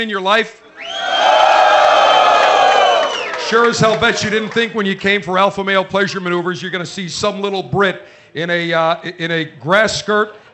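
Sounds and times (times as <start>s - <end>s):
speech: 0.0s - 1.2s, 3.5s - 10.5s
live audience cheering: 0.7s - 4.8s.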